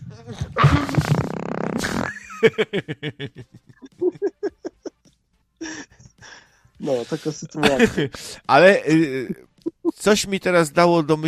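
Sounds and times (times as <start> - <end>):
long raspy fart: 0.0 - 2.3
speech: 0.1 - 0.8, 2.4 - 4.6, 6.8 - 11.2
laughter: 2.1 - 6.3, 6.9 - 8.4.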